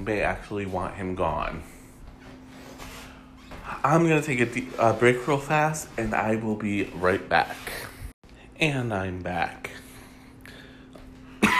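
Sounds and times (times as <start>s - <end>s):
speech: 0.0s - 1.8s, 3.8s - 7.9s, 8.6s - 9.8s
faint hum: 0.0s - 11.5s
person coughing: 11.4s - 11.5s.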